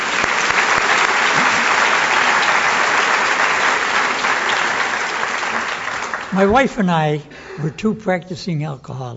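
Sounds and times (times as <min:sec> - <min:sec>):
crowd applauding: 0:00.0 - 0:07.0
speech: 0:06.4 - 0:09.1.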